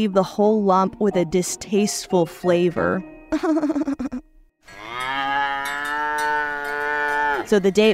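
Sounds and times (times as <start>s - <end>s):
speech: 0.0s - 4.2s, 7.5s - 7.9s
cow mooing: 4.7s - 7.7s.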